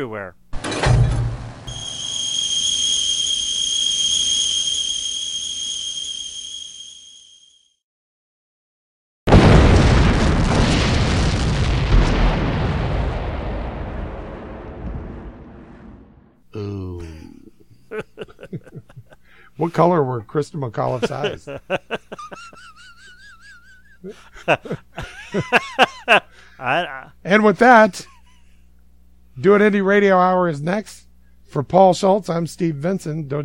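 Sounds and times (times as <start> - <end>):
speech: 0.0 - 1.0, 19.6 - 22.0, 24.0 - 25.6, 26.6 - 28.1, 29.4 - 33.4
steady high-pitched whistle: 1.7 - 7.8
loud explosion with crackling decay: 9.3 - 16.4
low rumble: 11.8 - 16.4
laughter: 16.6 - 19.8, 20.8 - 27.1.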